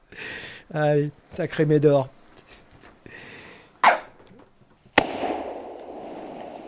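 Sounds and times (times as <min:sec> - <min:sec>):
hiss: 0:00.0 - 0:06.6
speech: 0:00.7 - 0:02.2
rumbling echo of a gunshot: 0:05.0 - 0:06.6
sharp gunshots: 0:05.0 - 0:06.6.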